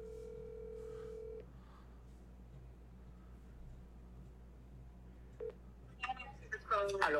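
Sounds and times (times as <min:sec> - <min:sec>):
steady phone dial tone: 0:00.0 - 0:01.4
low hum: 0:00.0 - 0:07.1
speech: 0:06.8 - 0:07.1.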